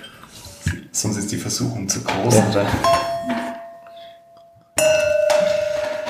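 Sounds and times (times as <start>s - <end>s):
speech: 1.0s - 3.4s
wine glass clinking while being moved: 2.8s - 6.0s.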